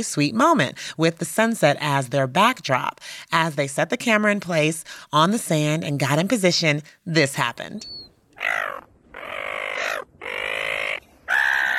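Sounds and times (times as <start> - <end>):
speech: 0.0 - 8.8
seagulls squawking on Dampier Beach Western Australia at sunset: 8.4 - 11.7.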